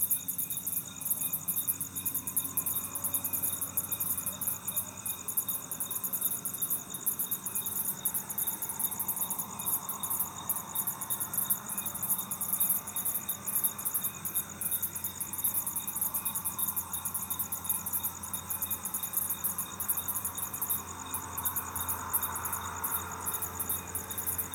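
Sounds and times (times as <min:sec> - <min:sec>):
cricket chirping: 0:00.0 - 0:24.5.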